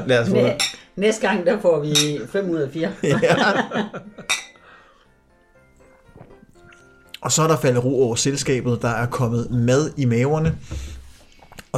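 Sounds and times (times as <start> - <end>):
speech: 0.0 - 4.3, 7.2 - 11.0
glasses clinking in a toast: 0.3 - 1.0, 1.9 - 2.3, 4.2 - 4.6
laughter: 3.0 - 4.3.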